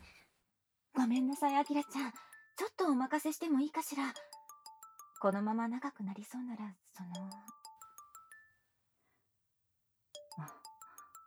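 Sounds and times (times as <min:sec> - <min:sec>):
speech: 0:01.1 - 0:04.4, 0:05.2 - 0:07.6, 0:10.4 - 0:10.6
phone ringtone with bright electronic melody of short notes: 0:01.2 - 0:02.6, 0:04.2 - 0:05.5, 0:07.2 - 0:08.6, 0:10.2 - 0:11.2.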